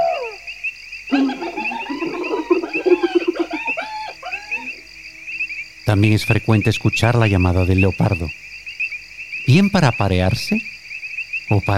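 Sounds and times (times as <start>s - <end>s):
insect buzz on the savanna: 0.0s - 11.7s
hyena giggling on the savanna: 1.1s - 4.8s
speech: 5.9s - 8.5s, 9.5s - 10.7s, 11.5s - 11.7s.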